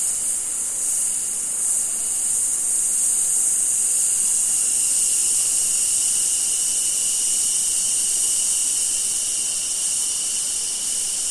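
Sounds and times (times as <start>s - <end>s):
cicadas in a summer forest in Australia: 0.0s - 11.2s.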